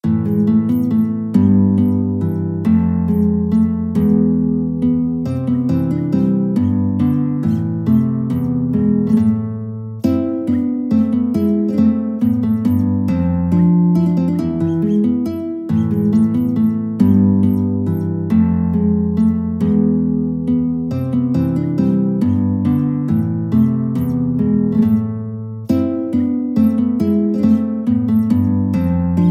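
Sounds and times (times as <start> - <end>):
guitar playing a minuet: 0.0 - 29.2.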